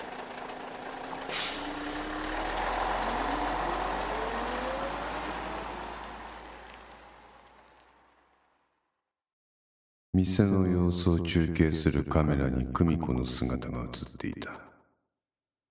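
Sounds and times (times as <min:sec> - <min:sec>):
bus engine rumbling: 0:00.0 - 0:08.4
bus air brakes hissing: 0:01.2 - 0:02.1
speech: 0:10.2 - 0:14.7.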